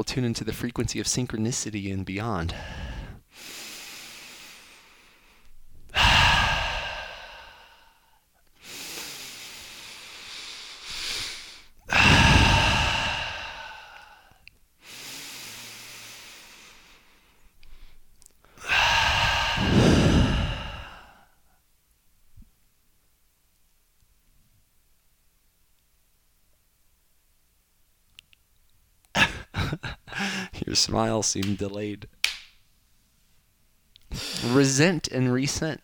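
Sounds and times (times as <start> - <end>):
speech: 0.0 - 3.5, 30.8 - 32.2, 34.4 - 35.8
deep breaths: 2.4 - 21.6, 29.6 - 30.6, 34.1 - 34.8.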